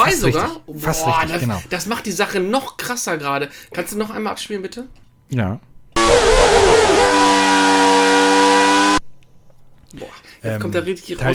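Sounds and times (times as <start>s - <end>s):
speech: 0.1s - 7.2s, 9.9s - 11.3s
Formula 1 car engine from racing video game screaming: 6.0s - 9.0s.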